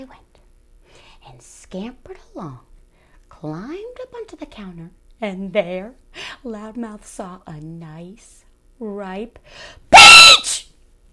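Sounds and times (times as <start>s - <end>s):
speech: 0.0s - 0.3s, 1.3s - 2.7s, 3.4s - 10.6s
person imitating a mouse screaming very loudly: 9.9s - 10.7s.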